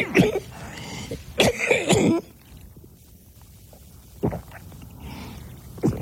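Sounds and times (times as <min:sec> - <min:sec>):
person coughing harshly: 0:00.0 - 0:02.3.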